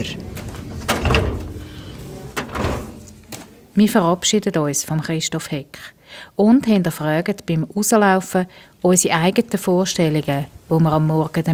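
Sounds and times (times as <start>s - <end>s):
speech: 0.0s - 0.3s, 3.8s - 11.5s
hanging-file drawer rolling shut with a muted clunk: 0.2s - 3.6s.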